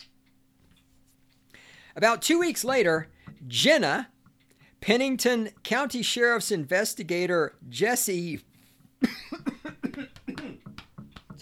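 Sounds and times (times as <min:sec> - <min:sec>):
speech: 0:02.0 - 0:04.1, 0:04.8 - 0:09.1
person coughing: 0:09.0 - 0:10.7.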